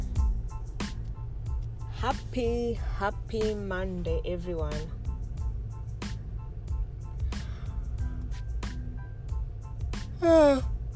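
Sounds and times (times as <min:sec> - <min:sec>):
low vehicle rumble in traffic: 0:00.0 - 0:10.9
speech: 0:02.0 - 0:05.0, 0:10.2 - 0:10.7
person yawning: 0:10.2 - 0:10.8.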